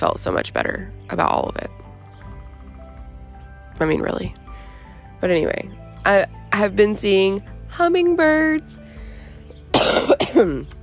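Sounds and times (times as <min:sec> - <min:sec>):
speech: 0:00.0 - 0:01.8, 0:03.8 - 0:04.4, 0:05.2 - 0:08.8, 0:09.8 - 0:10.8
person coughing: 0:09.7 - 0:10.6.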